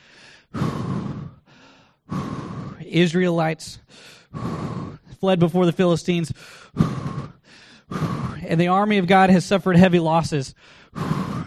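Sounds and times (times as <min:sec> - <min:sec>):
man panting heavily catching his breath after running from a battle: 0:00.0 - 0:05.6, 0:06.2 - 0:08.8, 0:10.5 - 0:11.4
speech: 0:02.9 - 0:07.0, 0:07.9 - 0:11.1.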